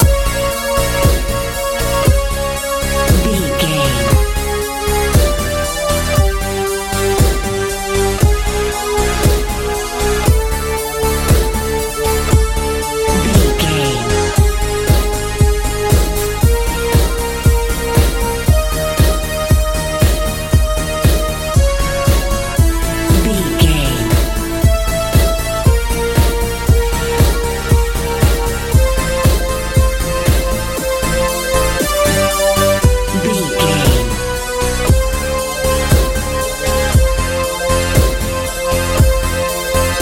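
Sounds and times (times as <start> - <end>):
colorful techno music: 0.0 - 40.0.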